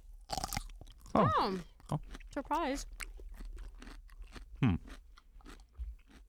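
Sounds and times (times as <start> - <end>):
crunchy bite into a pickled gherkin: 0.3 - 1.2, 2.9 - 6.2
wet chewing and soft mouth sounds: 0.3 - 6.2
speech: 1.2 - 3.0, 4.6 - 5.0.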